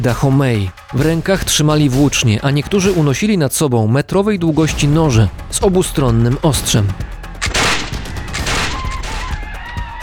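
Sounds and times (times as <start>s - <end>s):
speech: 0.0s - 7.2s
musket gunfire in a battle for a port town: 7.4s - 9.4s.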